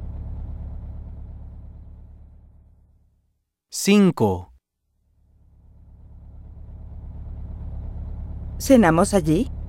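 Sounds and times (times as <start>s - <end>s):
bus engine rumbling as the bus pulls in at a bus stop: 0.0s - 3.2s, 5.1s - 9.6s
speech: 3.8s - 4.5s, 8.6s - 9.6s.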